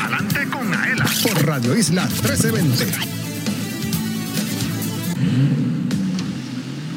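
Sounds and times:
speech: 0.6 - 3.2, 5.3 - 5.8
car engine revving hard: 2.0 - 6.9.

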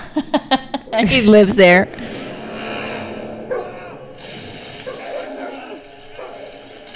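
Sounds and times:
laughter: 0.0 - 4.0
speech: 0.2 - 2.1
voice-like sounds: 1.0 - 2.0
busy noisy background: 1.0 - 6.9
dog barking and yipping: 3.4 - 6.9.

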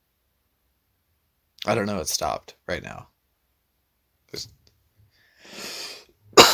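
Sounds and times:
speech: 1.6 - 3.1, 4.3 - 4.6
raspy wheezing breath: 5.2 - 6.2
person coughing: 6.4 - 6.5.

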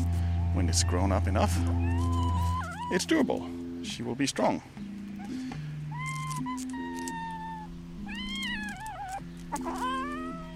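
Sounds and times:
low droning music: 0.0 - 10.5
speech: 0.6 - 5.4
female cat meowing in complaining yowls while carried: 0.8 - 3.2, 5.9 - 10.5.

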